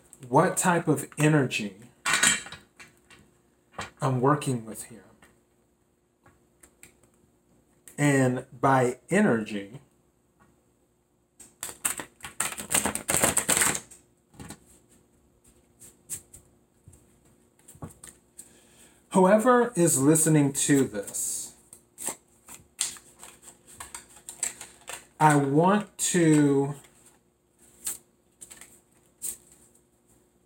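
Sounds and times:
speech: 0:00.3 - 0:01.8, 0:04.0 - 0:05.1, 0:08.0 - 0:09.9, 0:19.2 - 0:21.4, 0:25.2 - 0:26.9
tarot cards being shuffled: 0:11.4 - 0:14.8, 0:20.7 - 0:29.8.

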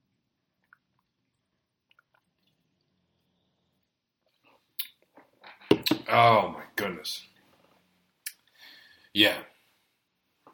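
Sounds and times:
faint wet clicks: 0:00.6 - 0:03.4
speech: 0:06.1 - 0:07.3, 0:09.2 - 0:09.5.

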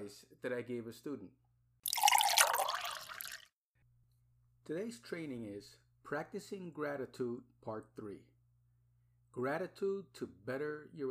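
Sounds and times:
speech: 0:00.1 - 0:01.4, 0:04.7 - 0:08.3, 0:09.3 - 0:11.1
coffee pouring into a cup: 0:01.9 - 0:03.5.

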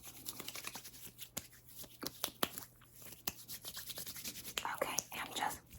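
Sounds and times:
moisturizer lotion rubbed into the skin of a face: 0:00.1 - 0:05.1
person whispering: 0:04.6 - 0:05.6.

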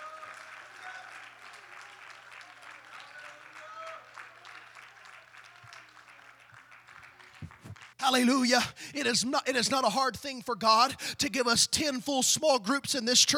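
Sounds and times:
audience clapping hands: 0:00.0 - 0:08.0
speech: 0:08.0 - 0:13.3.

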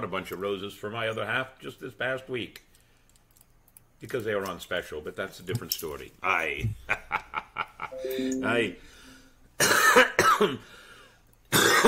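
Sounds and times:
speech: 0:00.0 - 0:02.7, 0:04.0 - 0:07.0, 0:08.0 - 0:09.0, 0:09.6 - 0:10.8, 0:11.5 - 0:11.8
ringing chime-like tone: 0:07.9 - 0:09.3
person coughing: 0:09.6 - 0:10.6, 0:11.5 - 0:11.8.

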